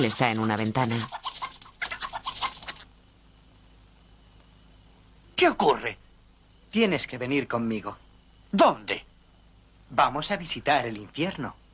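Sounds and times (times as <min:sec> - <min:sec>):
speech: 0:00.0 - 0:01.3, 0:05.4 - 0:06.0, 0:06.7 - 0:09.1, 0:09.9 - 0:11.6
hens clucking: 0:01.0 - 0:02.9.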